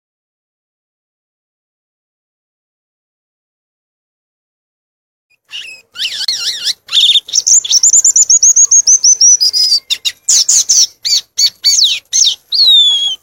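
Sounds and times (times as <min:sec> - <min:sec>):
Violaceous euphonia singing: 0:05.3 - 0:13.2.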